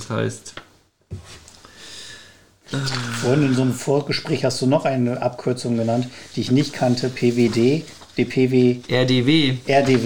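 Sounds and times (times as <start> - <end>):
speech: 0.0 - 1.4, 2.7 - 10.0
paper pages being turned: 2.8 - 10.0.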